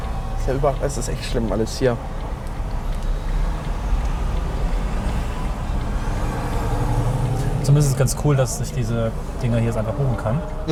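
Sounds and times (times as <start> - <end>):
Smart car-sharing car engine and road noise while driving: 0.0 - 10.7
speech: 0.5 - 2.3, 7.7 - 10.7.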